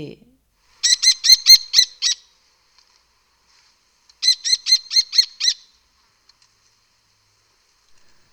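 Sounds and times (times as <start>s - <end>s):
speech: 0.0s - 0.3s
lesser kestrel shrill rapid calls: 0.8s - 2.2s, 4.2s - 5.7s.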